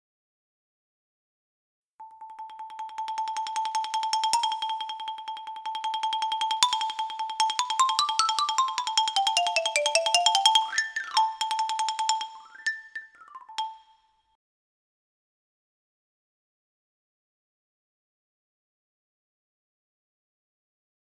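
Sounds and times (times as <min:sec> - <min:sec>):
xylophone: 0:02.0 - 0:14.1.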